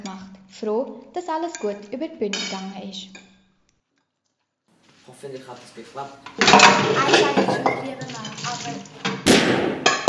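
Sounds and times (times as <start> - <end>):
speech: 0.2 - 3.3, 5.1 - 9.8
clattering busy sound: 4.8 - 9.2
gunshot: 9.2 - 10.0
burst of noise: 9.3 - 10.0.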